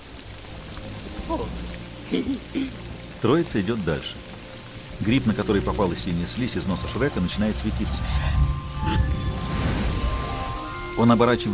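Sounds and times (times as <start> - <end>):
rain falling outdoors on surfaces: 0.0 - 11.5
speech: 1.3 - 4.3, 5.0 - 9.0, 11.0 - 11.5.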